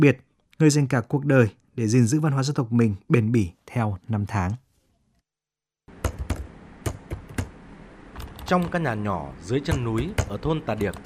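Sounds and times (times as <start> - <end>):
speech: 0.0 - 4.6, 8.5 - 11.0
typing on a computer keyboard: 8.2 - 8.8, 9.7 - 11.0.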